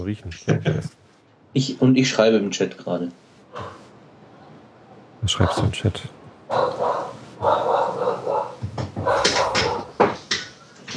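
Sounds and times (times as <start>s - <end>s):
speech: 0.0s - 3.8s, 5.2s - 8.0s
dog barking: 6.5s - 10.0s
laughter: 9.1s - 9.8s.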